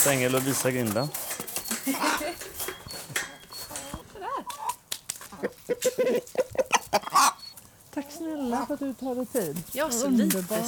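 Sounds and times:
speech: 0.0 - 2.1, 8.0 - 10.6
hens clucking in a hen yard: 0.0 - 10.6
hen squawk: 3.6 - 7.6.

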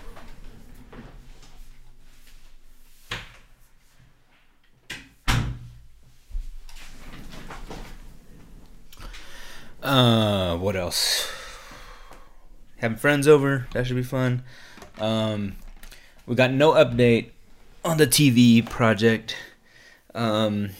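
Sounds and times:
door pushed shut with a solid thud: 5.3 - 5.8
speech: 9.9 - 11.4, 12.8 - 15.6, 16.3 - 19.5, 20.2 - 20.7.

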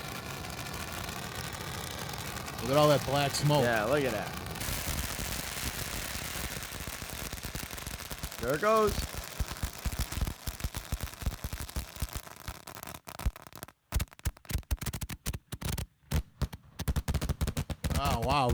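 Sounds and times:
salute firework bangs: 0.0 - 11.5, 17.0 - 18.5
long string of firecrackers crackling: 0.0 - 18.5
speech: 2.6 - 4.4, 8.4 - 9.2, 18.2 - 18.5.

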